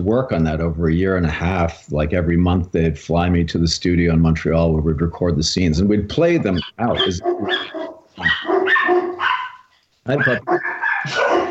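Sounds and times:
speech: 0:00.0 - 0:09.1, 0:10.1 - 0:11.4
rescue dogs barking at door: 0:06.3 - 0:11.4.

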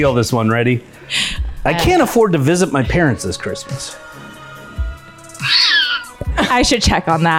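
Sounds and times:
speech: 0:00.0 - 0:04.0, 0:06.3 - 0:07.3
cat meowing: 0:05.4 - 0:06.2.

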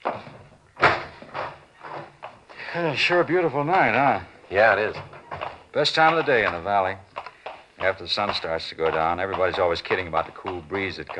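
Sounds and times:
door opening and closing: 0:00.0 - 0:02.4, 0:04.7 - 0:06.4
speech: 0:02.8 - 0:05.1, 0:05.8 - 0:07.1, 0:07.8 - 0:11.1.

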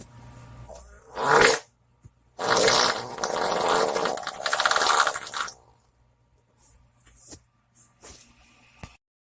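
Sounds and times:
long loud sputtering wet fart: 0:01.1 - 0:01.7, 0:02.4 - 0:05.6.

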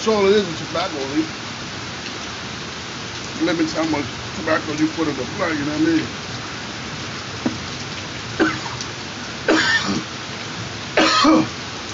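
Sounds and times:
speech: 0:00.0 - 0:01.4, 0:03.4 - 0:06.2, 0:09.5 - 0:10.1, 0:11.2 - 0:11.6
steady rain: 0:00.0 - 0:11.9
person coughing or clearing throat: 0:08.4 - 0:08.8, 0:09.5 - 0:10.1, 0:11.0 - 0:11.5.

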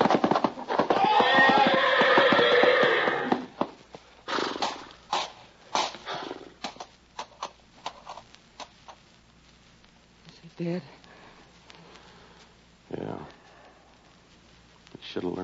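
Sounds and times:
horse in a stall whinnying: 0:00.0 - 0:03.6, 0:04.3 - 0:04.9
heavy horse hooves stamping and trampling in a stall: 0:00.0 - 0:09.0.

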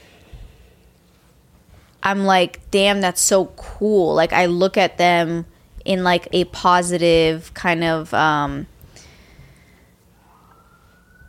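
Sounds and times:
speech: 0:02.0 - 0:08.7
emergency vehicle siren wailing: 0:10.1 - 0:11.2.

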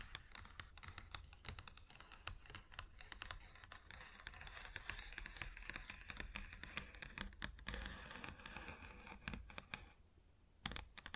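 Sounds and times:
fingers tapping on a wooden surface: 0:00.0 - 0:09.9, 0:10.6 - 0:11.1
fingers rubbing and scratching on a wooden surface: 0:00.0 - 0:10.0.

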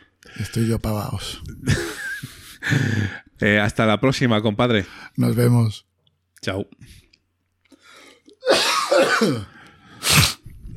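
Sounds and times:
speech: 0:00.4 - 0:07.0, 0:09.2 - 0:09.5
laughter: 0:01.7 - 0:03.0
person coughing with a strained raspy outburst: 0:08.4 - 0:10.4.

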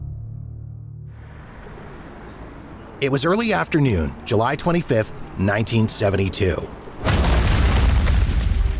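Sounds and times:
speech: 0:03.0 - 0:06.8
car bomb blast set off by dynamite in a parking garage: 0:07.0 - 0:08.7.

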